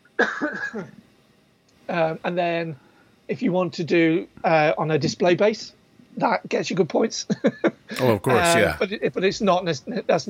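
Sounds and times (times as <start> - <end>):
raspy breathy cough or throat-clearing: 0.2 - 0.9
speech: 0.2 - 1.0, 1.9 - 10.2.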